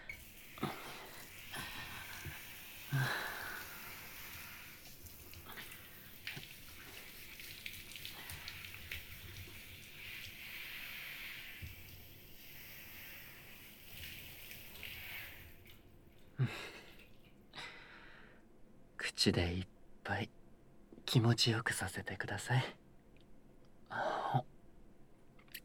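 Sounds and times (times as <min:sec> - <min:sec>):
shower water running, rinsing off foam: 0:00.0 - 0:17.2
speech: 0:19.2 - 0:20.3, 0:21.1 - 0:22.8, 0:24.3 - 0:24.5.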